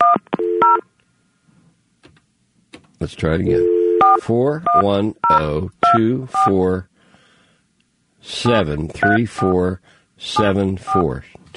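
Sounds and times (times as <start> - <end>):
touch-tone telephone dialing dual-tone beeps: 0.0 - 0.8, 3.5 - 6.5, 9.0 - 9.5, 10.4 - 11.1
speech: 3.0 - 6.9, 8.2 - 11.5.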